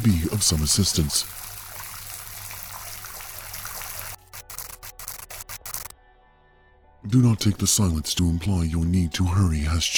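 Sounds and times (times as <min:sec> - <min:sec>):
speech: 0:00.0 - 0:01.4, 0:07.1 - 0:09.9
water pouring into a filling tank: 0:00.0 - 0:05.9.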